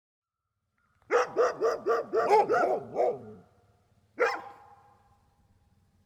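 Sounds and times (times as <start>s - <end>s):
dog barking on a farmyard: 1.1s - 3.4s, 4.2s - 5.0s.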